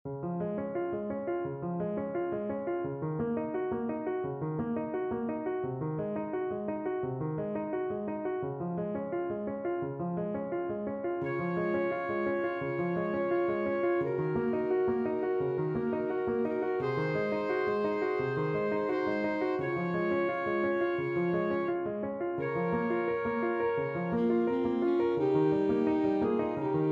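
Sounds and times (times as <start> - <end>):
piano: 0.0 - 26.9
alto saxophone: 11.2 - 21.8, 22.4 - 26.9.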